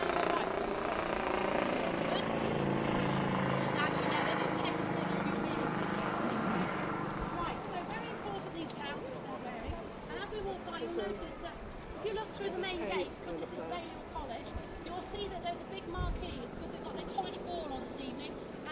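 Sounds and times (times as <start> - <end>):
police helicopter hovering overhead: 0.0 - 18.7.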